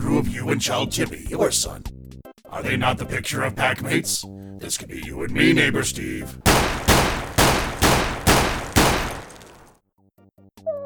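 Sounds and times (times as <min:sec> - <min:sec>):
speech: 0:00.2 - 0:02.0, 0:02.6 - 0:06.8
gunshots from a loaded gun: 0:06.5 - 0:09.7.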